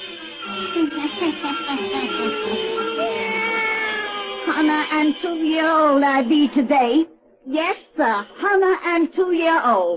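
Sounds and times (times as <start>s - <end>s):
speech: 0.7s - 2.9s, 4.6s - 9.9s
black cat meowing: 2.3s - 4.7s.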